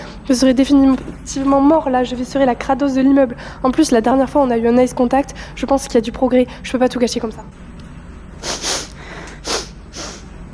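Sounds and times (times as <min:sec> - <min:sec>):
speech: 0:00.3 - 0:07.7
wet congested sniffing through a runny nose: 0:08.4 - 0:10.3.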